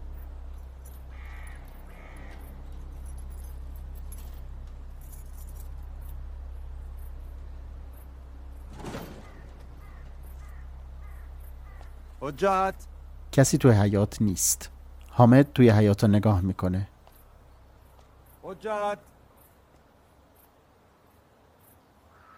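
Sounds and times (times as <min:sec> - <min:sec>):
steady low hum: 0:00.0 - 0:22.3
keys rattling at a house door lock: 0:02.6 - 0:06.4
speech: 0:12.2 - 0:16.9, 0:18.6 - 0:19.1.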